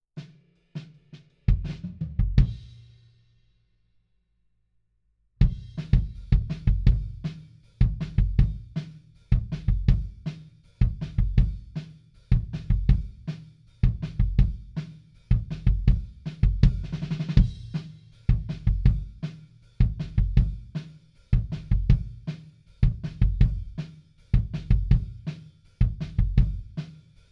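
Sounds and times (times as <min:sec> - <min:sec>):
kick drum beat: 0:05.4 - 0:20.8, 0:21.4 - 0:27.3.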